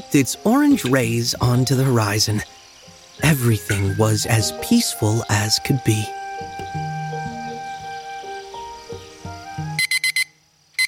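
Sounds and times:
speech: 0.0 - 2.6, 3.2 - 6.8
gentle melodic tune: 0.0 - 10.2
electronic alarm clock beeping: 9.8 - 10.8.

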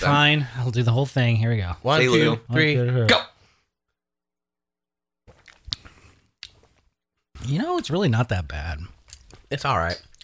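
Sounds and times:
speech: 0.0 - 3.3, 7.5 - 10.1
people gulping and swallowing flavored soda: 5.3 - 6.9
sharp slurps and clicks: 5.3 - 6.9.

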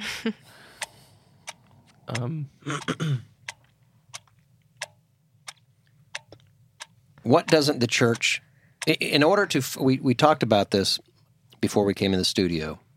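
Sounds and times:
speech: 0.2 - 0.6, 2.1 - 3.3, 7.2 - 12.8
clock ticking: 0.8 - 9.8
person murmuring: 2.1 - 3.2.

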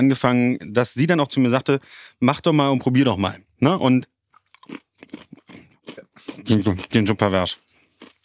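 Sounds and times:
speech: 0.0 - 5.3, 6.4 - 7.6
crunchy chocolate snack pieces being chewed: 4.3 - 8.2.

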